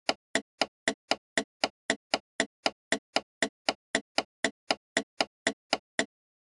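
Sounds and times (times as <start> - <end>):
car interior turn signal ticking: 0.1 - 6.1.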